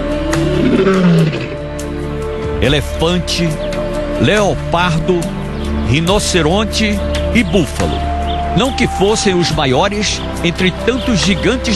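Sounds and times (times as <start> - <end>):
lion roaring on a savanna safari: 0.3 - 1.7
speech: 0.8 - 1.5, 2.6 - 11.7.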